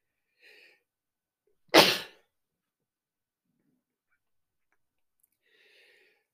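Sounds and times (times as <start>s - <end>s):
person sneezing: 1.7s - 2.2s.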